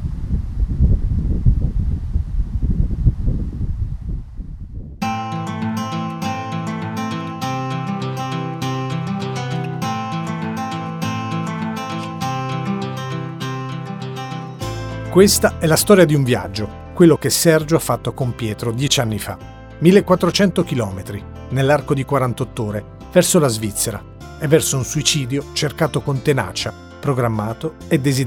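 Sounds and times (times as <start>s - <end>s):
outdoor wind blowing on a street on a sunny day: 0.0s - 5.1s
loud melodic music: 5.0s - 17.0s
speech: 15.2s - 28.2s.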